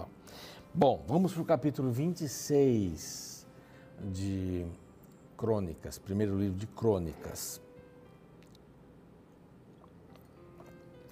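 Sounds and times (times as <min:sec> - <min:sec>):
low steady hum: 0:00.0 - 0:11.1
speech: 0:00.8 - 0:03.3, 0:04.0 - 0:04.8, 0:05.4 - 0:07.6
faint wet mouth clicks: 0:08.4 - 0:08.7, 0:09.7 - 0:11.1
person sipping and swallowing water: 0:08.4 - 0:08.7, 0:09.6 - 0:11.1.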